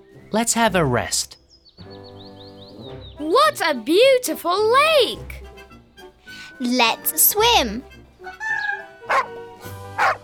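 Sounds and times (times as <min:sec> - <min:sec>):
speech: 0:00.3 - 0:01.4, 0:03.5 - 0:05.4, 0:06.6 - 0:08.4
dog barking at a lakeside: 0:09.0 - 0:09.4, 0:10.0 - 0:10.2.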